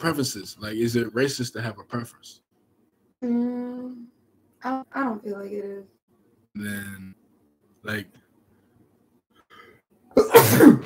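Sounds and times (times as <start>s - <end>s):
speech: 0.0s - 2.4s, 3.2s - 6.0s, 6.6s - 7.2s, 7.8s - 8.2s, 10.2s - 10.8s
loud sneeze: 10.1s - 10.8s.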